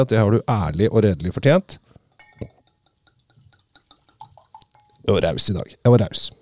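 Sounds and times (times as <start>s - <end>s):
speech: 0.0s - 2.5s, 5.1s - 6.4s
red wine pouring into a glass: 1.5s - 6.4s
glass clinks: 1.7s - 5.4s.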